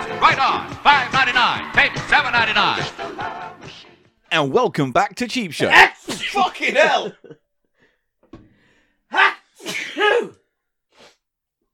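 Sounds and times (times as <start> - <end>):
speech: 0.3 - 3.4, 4.3 - 7.4, 9.1 - 10.4
person sneezing loudly: 5.7 - 6.6, 9.1 - 10.4
laughter: 6.2 - 7.5.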